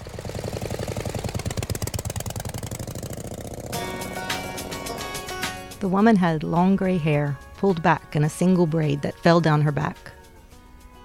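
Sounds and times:
motorcycle engine running with a steady putter: 0:00.0 - 0:07.1
speech: 0:05.8 - 0:10.2.

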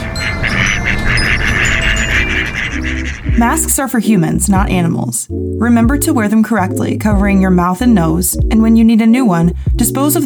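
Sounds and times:
duck quacking: 0:00.2 - 0:03.7
speech: 0:03.4 - 0:10.2.

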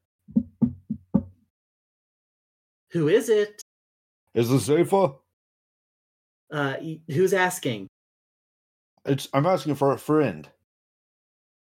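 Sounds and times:
firm knocking on a wooden front door: 0:00.3 - 0:01.4
speech: 0:02.9 - 0:03.6, 0:04.4 - 0:05.2, 0:06.5 - 0:07.9, 0:09.0 - 0:10.6.

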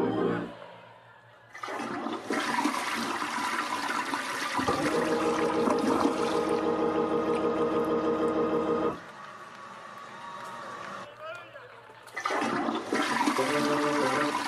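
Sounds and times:
toilet flushing: 0:01.6 - 0:09.0, 0:12.2 - 0:14.4.

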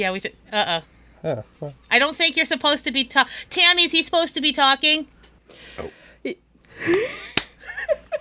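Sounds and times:
speech: 0:00.0 - 0:07.3
man slapping both hands over his mouth: 0:07.3 - 0:07.6.

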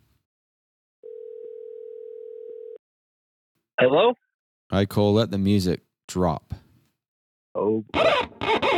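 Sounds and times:
steady electronic telephone tone while adding a caller: 0:01.0 - 0:02.8
speech: 0:03.8 - 0:06.6, 0:07.6 - 0:08.6.

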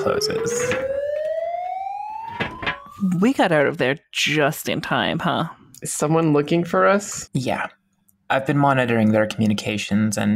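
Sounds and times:
speech: 0:00.0 - 0:01.0, 0:03.0 - 0:10.3
siren wailing: 0:00.0 - 0:03.8
clattering bangs: 0:02.3 - 0:02.9.

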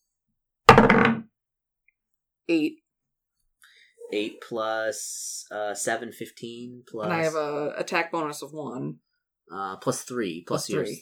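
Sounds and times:
dice rolled on a table for an attack in a tabletop role-playing game: 0:00.7 - 0:01.2
speech: 0:02.5 - 0:02.8, 0:04.1 - 0:11.0.

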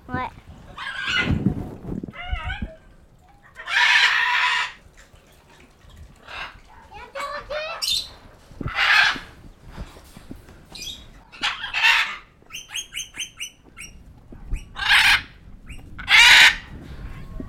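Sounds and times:
caged parrot squawking and screeching: 0:00.8 - 0:01.3, 0:03.5 - 0:04.8, 0:06.2 - 0:09.3, 0:10.8 - 0:14.0, 0:14.6 - 0:16.7.

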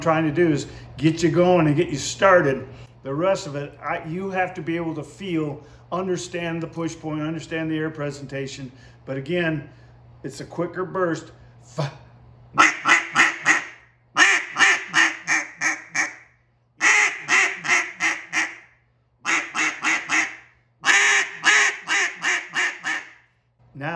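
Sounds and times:
speech: 0:00.0 - 0:12.7
quacks blown on a cut-down duck call: 0:12.6 - 0:16.2, 0:16.8 - 0:23.2.

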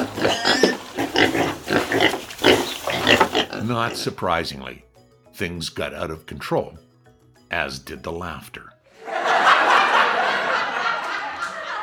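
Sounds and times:
pigs oinking and grunting: 0:00.0 - 0:04.2
speech: 0:03.7 - 0:06.8, 0:07.5 - 0:09.2
laughter: 0:09.0 - 0:11.8.

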